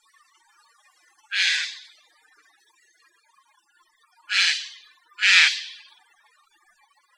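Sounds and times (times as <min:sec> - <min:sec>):
Eurasian jay uttering hoarse grating screams: 0:01.3 - 0:01.8, 0:04.3 - 0:05.8.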